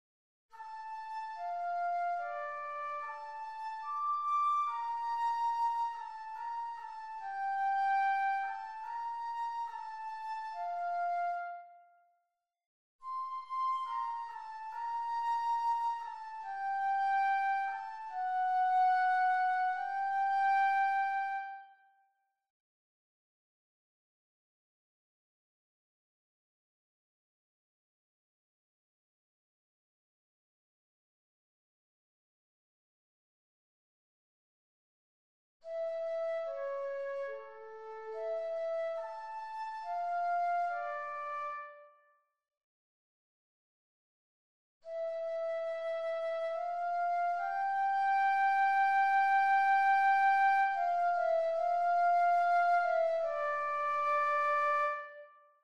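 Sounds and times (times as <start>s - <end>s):
flute playing: 0.6s - 11.9s, 13.0s - 21.9s, 35.7s - 41.9s, 44.9s - 55.4s.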